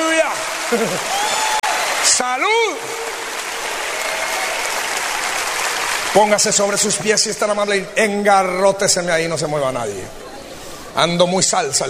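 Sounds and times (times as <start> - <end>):
large crowd applauding: 0.0 - 7.5
speech: 0.7 - 1.4, 2.1 - 3.4, 6.1 - 10.3, 11.0 - 11.8.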